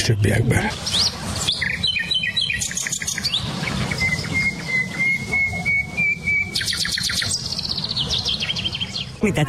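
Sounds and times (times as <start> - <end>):
speech: 0.0 - 1.2, 9.2 - 9.4
songbirds singing outdoors: 0.0 - 9.4.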